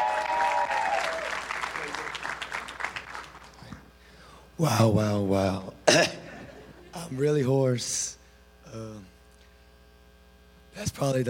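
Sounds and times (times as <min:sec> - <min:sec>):
audience applause: 0:00.0 - 0:03.7
speech: 0:04.6 - 0:06.2, 0:07.1 - 0:09.1, 0:11.0 - 0:11.2.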